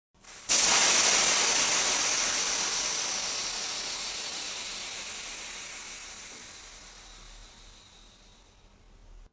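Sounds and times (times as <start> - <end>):
air being let out: 0.2 - 9.3.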